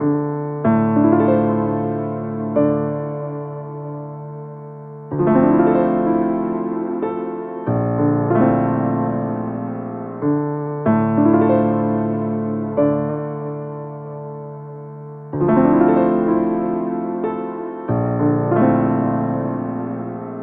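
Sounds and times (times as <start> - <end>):
lo-fi piano loop in D minor: 0.0 - 20.4.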